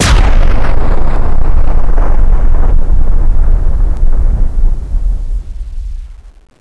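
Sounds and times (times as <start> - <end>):
blackball weapon blast: 0.0 - 6.1.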